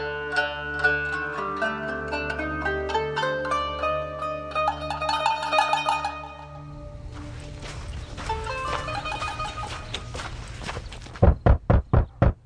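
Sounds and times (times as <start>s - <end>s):
musical score: 0.0s - 10.3s
footsteps: 7.0s - 12.4s
loud knocks on a door: 11.2s - 12.4s.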